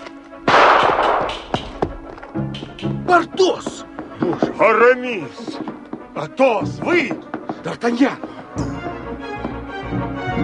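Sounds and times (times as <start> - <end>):
faint sharp cracks: 0.0 - 2.9
loud pistol gunshot blast: 0.5 - 1.6
speech: 3.1 - 5.6, 6.2 - 8.7.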